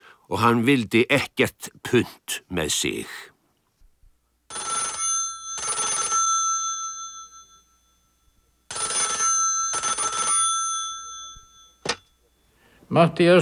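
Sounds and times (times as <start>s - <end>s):
speech: 0.3s - 3.3s, 12.9s - 13.4s
telephone bell ringing: 4.5s - 12.5s.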